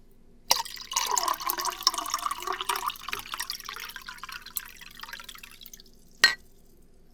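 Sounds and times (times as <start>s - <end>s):
water pouring into a glass: 0.5s - 6.2s.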